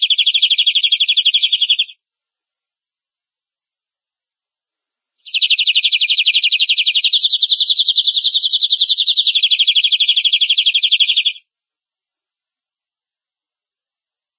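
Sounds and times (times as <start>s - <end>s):
domestic canary rolling trill: 0.0s - 1.9s, 5.3s - 11.4s.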